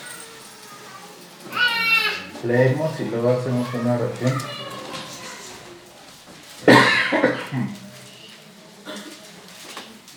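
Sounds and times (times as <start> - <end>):
low noise: 0.0 - 10.1
speech: 2.4 - 4.7
sharp cough to get attention: 6.6 - 7.7.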